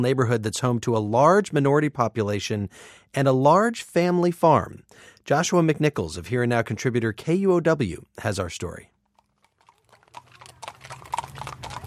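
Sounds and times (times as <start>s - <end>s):
speech: 0.0s - 8.9s
horse hooves clip-clopping on pavement on Henderson Street in Seattle: 9.2s - 11.8s.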